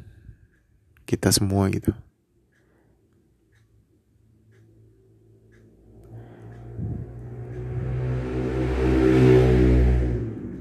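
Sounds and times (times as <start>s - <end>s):
speech: 1.1s - 2.1s
motorcycle engine revving while speeding past: 5.8s - 10.5s.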